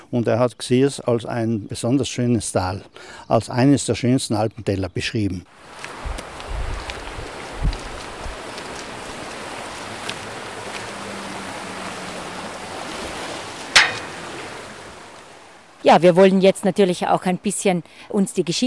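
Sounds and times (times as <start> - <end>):
speech: 0.1 - 6.0, 15.8 - 18.6
Alpine mountain brook rushing: 5.6 - 15.5.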